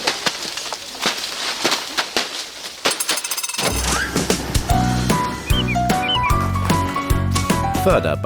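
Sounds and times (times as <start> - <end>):
apples thudding onto the ground and leaves from a shaken tree: 0.0 - 7.6
music: 3.8 - 8.2.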